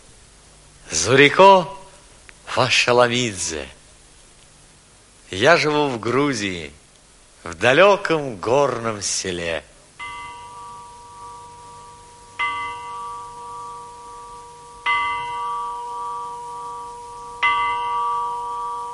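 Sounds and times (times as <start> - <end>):
speech: 0.9 - 1.8, 2.6 - 3.8, 5.3 - 6.8, 7.4 - 9.7
village bell ringing in a mountain village in Georgia in the morning: 10.0 - 18.9.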